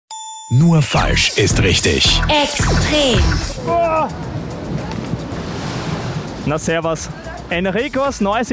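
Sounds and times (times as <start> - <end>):
speech: 0.5 - 4.4, 6.4 - 8.5
water rushing and splashing on a water park ride: 2.4 - 8.5.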